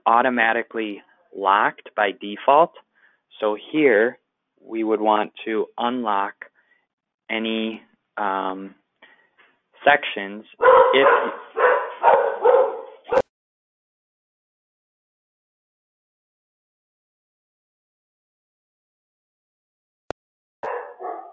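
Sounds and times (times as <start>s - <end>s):
speech: 0.0s - 6.4s, 7.3s - 8.8s, 9.8s - 11.4s
dogs barking: 10.6s - 13.2s, 20.6s - 21.3s.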